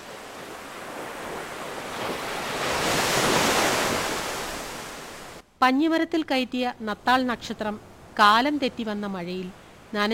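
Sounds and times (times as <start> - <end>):
rough sea waves surging: 0.0 - 5.4
speech: 5.6 - 10.1.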